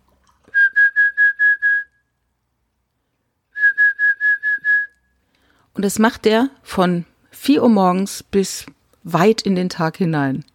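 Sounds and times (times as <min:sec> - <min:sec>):
person whistling an imitation of a bird call: 0:00.5 - 0:02.0, 0:03.6 - 0:05.1
speech: 0:05.8 - 0:10.5.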